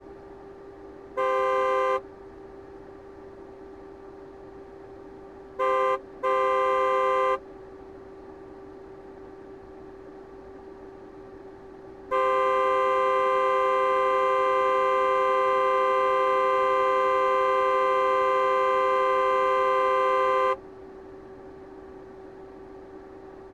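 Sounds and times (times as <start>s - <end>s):
Aston Martin DB9 horn: 1.1s - 2.2s, 5.4s - 7.6s, 12.1s - 20.7s.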